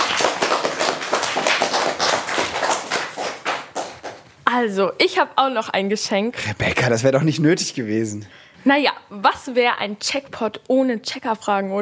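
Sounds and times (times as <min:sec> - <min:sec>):
a few people clapping: 0:00.0 - 0:04.4
speech: 0:04.6 - 0:11.7.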